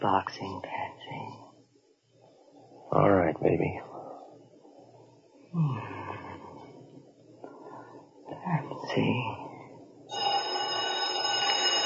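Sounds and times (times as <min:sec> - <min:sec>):
speech: 0:00.0 - 0:01.4, 0:02.9 - 0:03.9, 0:05.5 - 0:06.0, 0:08.4 - 0:09.4
telephone bell ringing: 0:10.1 - 0:11.8.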